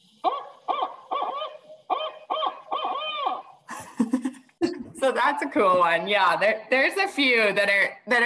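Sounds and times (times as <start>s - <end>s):
barred owl hooting: 0.2s - 3.7s
speech: 4.0s - 4.3s, 5.0s - 8.2s.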